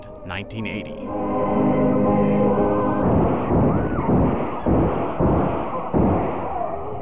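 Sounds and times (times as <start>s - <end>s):
steady tonal drone: 0.0s - 7.0s
speech: 0.2s - 2.2s
gunfire during a church shooting: 2.8s - 7.0s.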